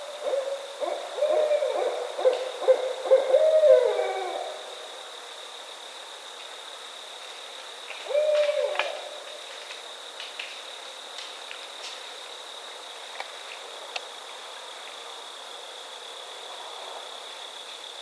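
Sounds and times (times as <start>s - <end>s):
barred owl hooting: 0.1s - 4.6s, 8.1s - 9.0s.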